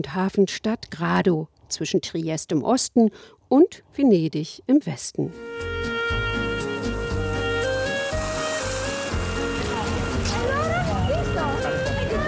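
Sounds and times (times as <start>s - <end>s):
speech: 0.0s - 5.7s
higher tonal sounds: 5.3s - 12.2s
water washing along a seaside promenade in the evening: 6.1s - 12.2s.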